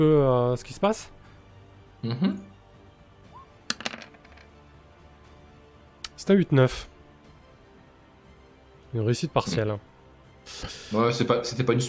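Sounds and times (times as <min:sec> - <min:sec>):
speech: 0:00.0 - 0:01.2, 0:02.0 - 0:02.5, 0:06.2 - 0:06.9, 0:08.9 - 0:09.9, 0:10.5 - 0:11.8
dice clattering across a hard surface: 0:03.7 - 0:04.6.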